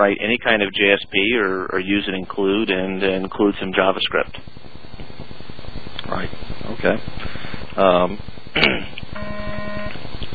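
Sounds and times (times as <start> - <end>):
speech: 0.0 - 4.6, 6.1 - 9.4
faint constant hum: 0.0 - 10.3
electronic beeping: 9.1 - 10.0.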